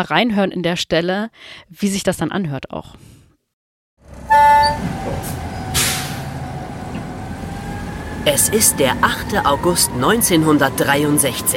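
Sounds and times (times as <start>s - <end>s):
speech: 0.0s - 3.2s, 8.2s - 11.5s
mail train rumbling along at night: 4.0s - 11.5s
short bright train horn toot: 4.2s - 5.0s.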